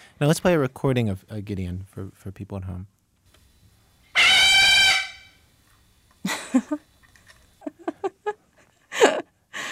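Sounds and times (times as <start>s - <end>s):
speech: 0.2s - 3.0s
dog screaming very loudly: 4.1s - 5.3s
laughter: 6.2s - 6.8s, 7.6s - 9.4s.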